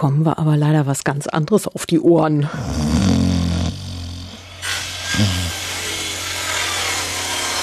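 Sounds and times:
speech: 0:00.0 - 0:03.2, 0:05.1 - 0:05.5
brief snore-like growl: 0:02.5 - 0:05.9
harsh grinding construction noise: 0:03.8 - 0:07.6.

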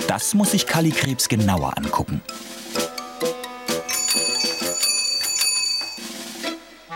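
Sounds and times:
speech: 0:00.1 - 0:03.3
bicycle bell ringing: 0:03.9 - 0:06.2.

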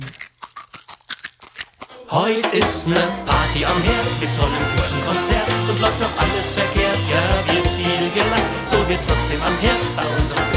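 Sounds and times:
person chewing scrambled eggs with bits of eggshell: 0:00.0 - 0:02.5
speech: 0:02.1 - 0:10.5.

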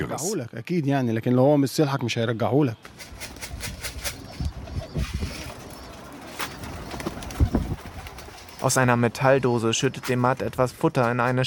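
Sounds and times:
speech: 0:00.0 - 0:03.3, 0:08.6 - 0:11.4
pigeons cooing: 0:02.9 - 0:09.0
pigeon wings fluttering: 0:02.9 - 0:10.4.

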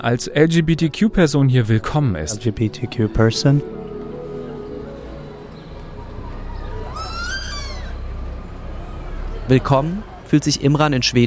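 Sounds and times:
speech: 0:00.0 - 0:03.8, 0:09.5 - 0:11.2
low rumble of city traffic: 0:03.8 - 0:11.2
seagull squawking call over city rooftops: 0:06.2 - 0:08.2.

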